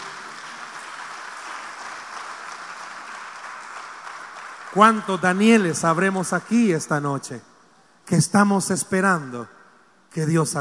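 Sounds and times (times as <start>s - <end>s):
audience applauding with dense steady clapping: 0.0s - 5.4s
speech: 4.7s - 7.5s, 8.1s - 10.5s.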